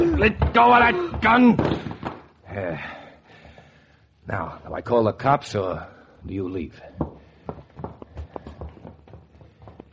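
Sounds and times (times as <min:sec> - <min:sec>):
hurried footsteps clattering down a stairway: 0:00.0 - 0:02.3, 0:06.8 - 0:09.9
speech: 0:00.2 - 0:01.9, 0:02.6 - 0:03.0, 0:04.3 - 0:07.6.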